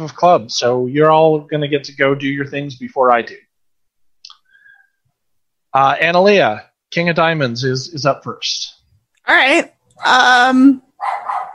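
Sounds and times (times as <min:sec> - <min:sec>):
speech: 0:00.0 - 0:03.4, 0:05.7 - 0:10.8
dog barking: 0:11.0 - 0:11.5.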